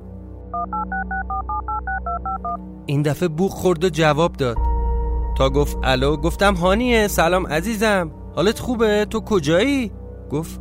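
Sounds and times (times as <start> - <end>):
speech: 0.5 - 4.7, 5.4 - 10.5
mobile phone keypad tones as a number is dialed: 0.6 - 2.6.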